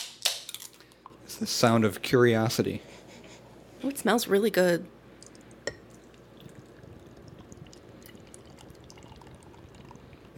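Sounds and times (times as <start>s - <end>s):
speech: 1.4s - 3.0s, 3.8s - 5.0s
pale ale with added lactose sugar poured into a glass: 5.3s - 10.3s
glass clink: 5.6s - 5.9s.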